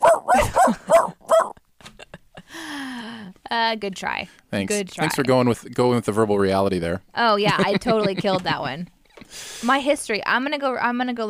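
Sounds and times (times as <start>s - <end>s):
person imitating high yapping puppy barks: 0.0s - 1.6s
speech: 3.7s - 11.2s
laughter: 7.4s - 8.9s.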